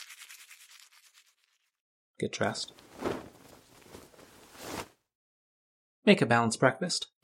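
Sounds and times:
toothbrush scrubbing teeth: 0.0 - 1.8
speech: 2.2 - 3.2, 6.1 - 7.1.

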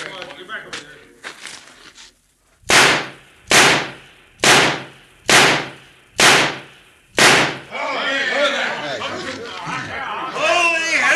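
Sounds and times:
people talking: 0.0 - 1.4, 7.7 - 11.1
gunshots fired at a target in a shooting contest: 2.6 - 7.7.

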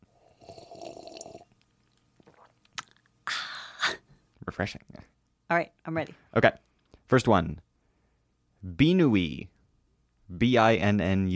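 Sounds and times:
person sipping wine with a soft slurp and swallow: 0.1 - 3.1
speech: 4.6 - 4.9, 5.5 - 7.6, 8.6 - 9.5, 10.3 - 11.3.

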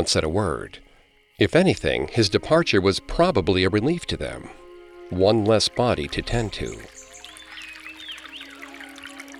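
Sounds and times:
speech: 0.0 - 0.8, 1.4 - 7.0
stream water trickling: 0.0 - 9.3.

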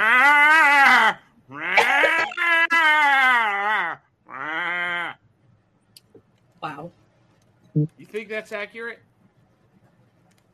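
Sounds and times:
sheepsquatch creature call, sheep-like bleating cries: 0.0 - 5.2
speech: 7.8 - 9.1.

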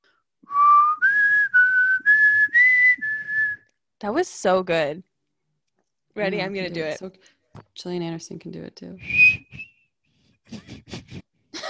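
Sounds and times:
person whistling a tune: 0.4 - 3.8, 9.0 - 10.0
speech: 4.0 - 5.1, 6.2 - 9.7
laughter: 10.5 - 11.6.

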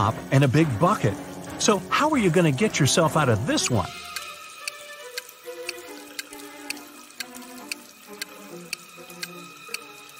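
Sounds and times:
speech: 0.0 - 4.1
water running from a wall faucet: 0.0 - 10.1
drip-like clicks: 3.6 - 10.1.

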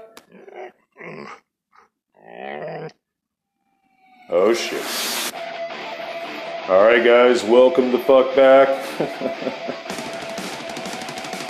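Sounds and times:
dog whimpering: 0.0 - 1.4, 2.2 - 2.9
dog growling: 0.1 - 3.0
speech: 4.3 - 5.2, 6.7 - 10.1
laughter: 8.8 - 9.9.

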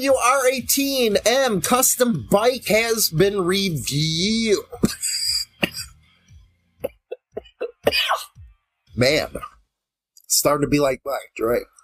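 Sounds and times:
speech: 0.0 - 5.1, 9.0 - 9.5, 10.3 - 11.8
person coughing: 4.7 - 6.0, 6.8 - 8.4.

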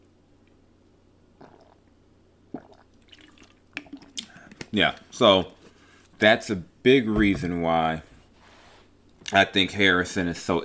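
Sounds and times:
person sipping a drink: 1.4 - 4.7
speech: 4.7 - 5.6, 6.2 - 8.1, 9.3 - 10.6.

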